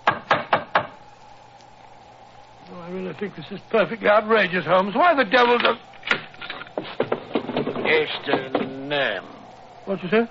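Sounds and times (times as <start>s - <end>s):
speech: 3.2s - 6.2s, 7.9s - 10.2s
door knocker knocking on a door: 6.8s - 8.7s.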